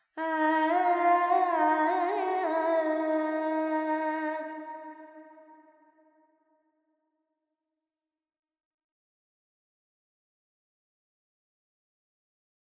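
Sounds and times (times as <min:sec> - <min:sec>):
Carnatic female vocal alaps in Phrygian with reverb: 0:00.2 - 0:05.0.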